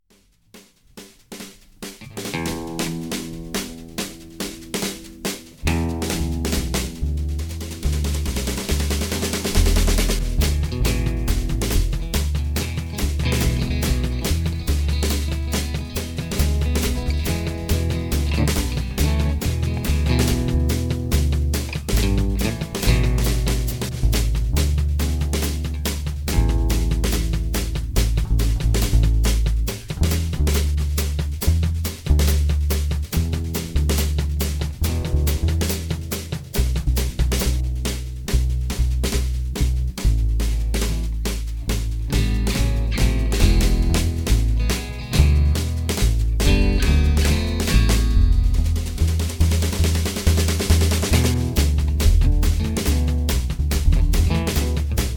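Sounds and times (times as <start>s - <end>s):
bass guitar loop: 2.0s - 55.1s.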